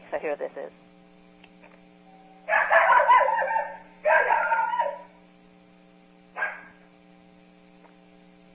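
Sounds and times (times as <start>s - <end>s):
steady low hum: 0.0s - 8.5s
speech: 0.1s - 1.0s
dog giving disturbance barks: 2.5s - 5.2s, 6.4s - 6.8s.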